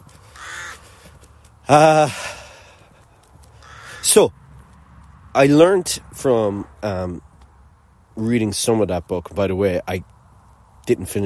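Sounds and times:
crow cawing: 0:00.2 - 0:01.1, 0:03.5 - 0:04.1
speech: 0:01.7 - 0:02.3, 0:04.1 - 0:04.4, 0:05.3 - 0:07.3, 0:08.2 - 0:10.1, 0:10.9 - 0:11.2.

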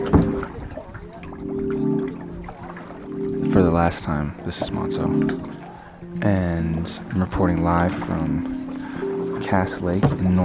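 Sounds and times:
soft splash: 0:00.0 - 0:03.3
water trickling and gurgling in a pond: 0:00.0 - 0:10.4
speech: 0:03.8 - 0:05.6, 0:06.2 - 0:08.6, 0:09.4 - 0:10.4.

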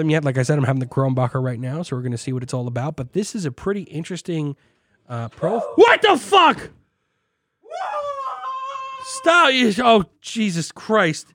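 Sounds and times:
speech: 0:00.0 - 0:06.8, 0:09.1 - 0:11.3
person yelling loudly in the room: 0:05.4 - 0:06.7, 0:07.7 - 0:09.8.

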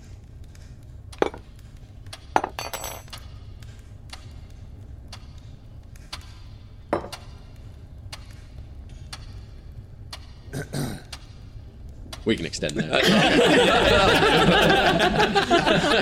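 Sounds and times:
low steady room hum: 0:00.0 - 0:16.0
forks clinking on ceramic plates: 0:02.4 - 0:03.2
speech: 0:12.3 - 0:16.0
laughter: 0:12.6 - 0:16.0.

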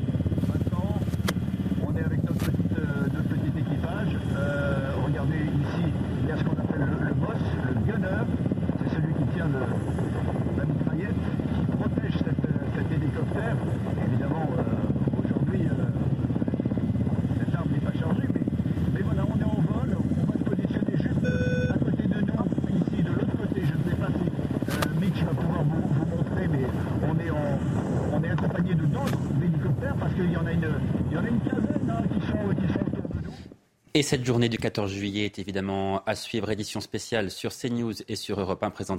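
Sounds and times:
military helicopter engine and rotor drone heard in the cabin in flight: 0:00.0 - 0:33.5
wind-like rushing in a helicopter cabin: 0:00.0 - 0:33.5
speech: 0:34.0 - 0:38.9.

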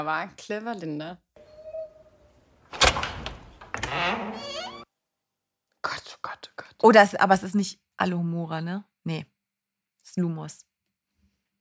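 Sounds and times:
speech: 0:00.0 - 0:01.2, 0:03.9 - 0:04.6, 0:06.8 - 0:09.3, 0:10.0 - 0:10.7
door clunking: 0:02.7 - 0:04.8.

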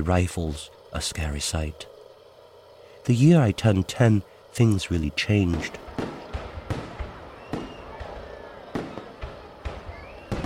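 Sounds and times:
speech: 0:00.0 - 0:01.9, 0:03.0 - 0:06.1
steady murmur of noise: 0:04.4 - 0:10.4
firecrackers popping for Tet Lunar New Year in central Vietnam: 0:04.6 - 0:10.4.

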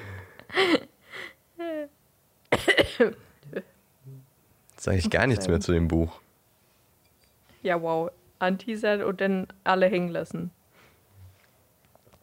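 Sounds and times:
speech: 0:00.5 - 0:00.9, 0:03.0 - 0:03.3, 0:04.8 - 0:06.3, 0:07.7 - 0:10.6
person coughing: 0:02.5 - 0:03.2.

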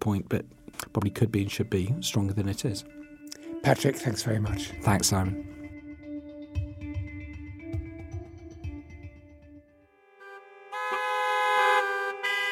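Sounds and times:
speech: 0:00.0 - 0:03.0, 0:03.6 - 0:05.6
car horns honking in a New York City traffic jam: 0:10.2 - 0:12.5.

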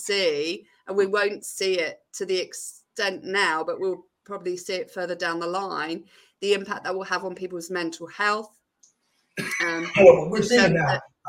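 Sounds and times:
speech: 0:00.0 - 0:08.6, 0:09.4 - 0:11.2
person coughing and clearing their throat: 0:09.4 - 0:10.6.

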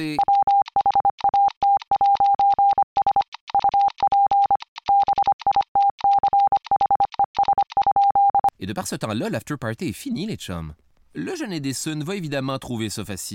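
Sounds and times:
speech: 0:00.0 - 0:00.4, 0:08.6 - 0:13.3
Morse code beeps: 0:00.1 - 0:08.5.

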